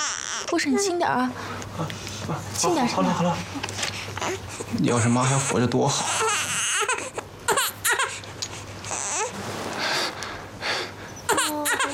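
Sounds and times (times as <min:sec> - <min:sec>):
infant crying while a nurse tends to it: 0:00.0 - 0:00.8, 0:04.2 - 0:08.2, 0:08.8 - 0:09.4, 0:11.3 - 0:11.9
speech: 0:00.5 - 0:06.3.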